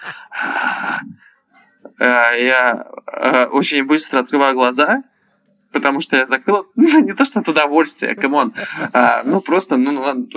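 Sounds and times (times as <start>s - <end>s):
voice imitating heavy raspy breathing: 0.0s - 1.3s, 8.2s - 9.4s
speech: 2.0s - 5.1s, 5.7s - 10.3s
laughter: 6.8s - 9.9s.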